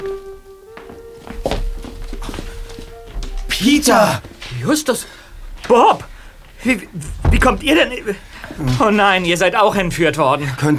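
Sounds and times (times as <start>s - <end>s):
footstep-like taps: 0.0s - 10.4s
speech: 3.6s - 10.7s
hotel room door opening with a solid thunk and scraping knocks: 5.4s - 9.0s.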